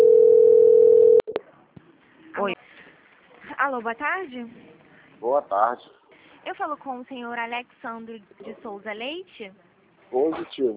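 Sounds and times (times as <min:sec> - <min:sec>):
telephone tone during a call transfer: 0:00.0 - 0:01.4
speech: 0:03.7 - 0:10.7.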